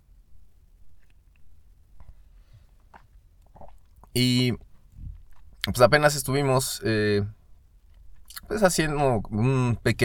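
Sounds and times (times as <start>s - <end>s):
sipping coffee with slurping and swallowing: 2.8s - 5.6s
speech: 4.2s - 4.6s, 5.7s - 7.4s, 8.4s - 10.0s.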